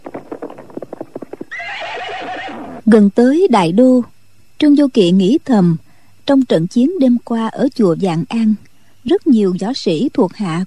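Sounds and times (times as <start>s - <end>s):
ridden horse hooves galloping: 0.0s - 2.8s
horse whinnying: 1.2s - 2.8s
speech: 2.9s - 10.6s.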